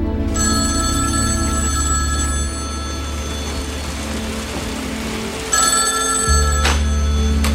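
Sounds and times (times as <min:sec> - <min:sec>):
telephone ringing: 0:00.4 - 0:07.5
steady hiss: 0:02.6 - 0:06.3.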